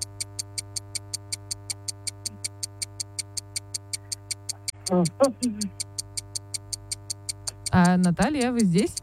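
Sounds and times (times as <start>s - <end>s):
quiz countdown clock ticking rapidly: 0.0s - 9.0s
steady low hum: 0.0s - 9.0s
speech: 4.9s - 5.8s, 7.8s - 9.0s.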